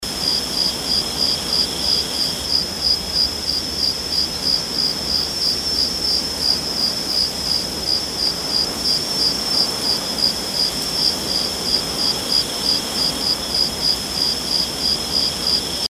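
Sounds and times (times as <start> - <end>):
crickets ambience: 0.0 - 15.9.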